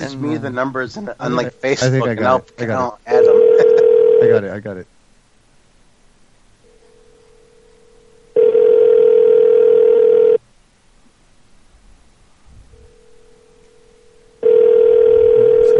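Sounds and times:
speech: 0:00.0 - 0:03.3, 0:04.2 - 0:05.0
phone ringing tone with electronic buzz: 0:03.1 - 0:04.4, 0:06.7 - 0:10.4, 0:14.0 - 0:15.7.

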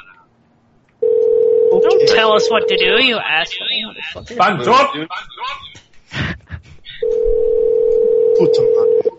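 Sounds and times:
telephone ringing tone: 0:01.0 - 0:03.1, 0:07.0 - 0:09.1
speech: 0:02.2 - 0:05.6, 0:08.4 - 0:08.9.

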